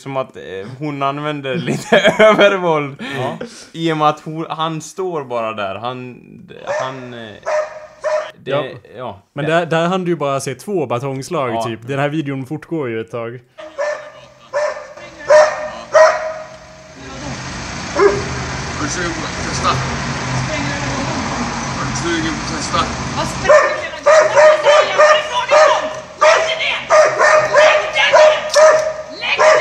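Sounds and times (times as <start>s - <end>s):
speech: 0.0s - 7.6s, 8.4s - 13.7s, 18.9s - 20.1s, 22.0s - 23.7s
laughter: 1.6s - 3.6s, 13.6s - 17.5s
dog barking aggressively: 6.7s - 8.4s, 13.6s - 20.1s, 23.0s - 29.5s
steady rumble of traffic or crowd noise: 13.7s - 29.5s.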